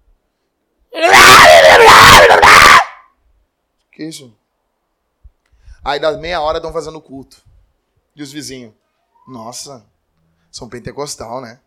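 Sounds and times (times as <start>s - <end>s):
voice imitating a hysterical scream: 0.9s - 3.1s
speech: 4.0s - 4.4s, 5.8s - 7.5s, 8.2s - 9.9s, 10.5s - 11.6s.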